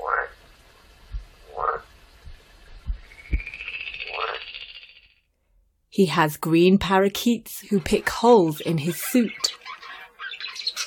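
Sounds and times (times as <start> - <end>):
frog croaking in a pond: 0.0 - 0.4, 1.4 - 1.9, 3.0 - 5.3
soft low thumps: 1.0 - 3.6
thin high sustained chirping tone: 2.8 - 5.3
speech: 6.0 - 9.6.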